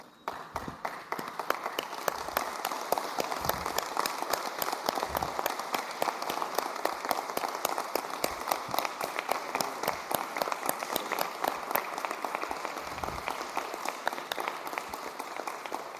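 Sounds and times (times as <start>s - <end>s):
audience applause: 0.0s - 15.9s.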